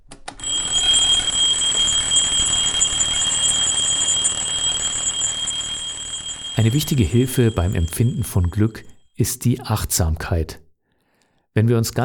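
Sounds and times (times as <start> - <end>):
alarm clock ringing with a harsh metallic jangle: 0.4 - 9.0
speech: 6.6 - 10.6, 11.6 - 12.0.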